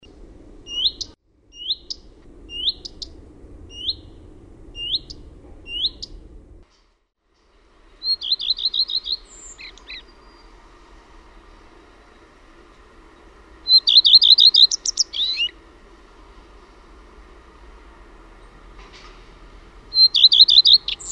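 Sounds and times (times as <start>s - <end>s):
common redstart whistled calls and chirps: 0.6s - 6.2s, 7.8s - 15.6s, 19.9s - 21.1s.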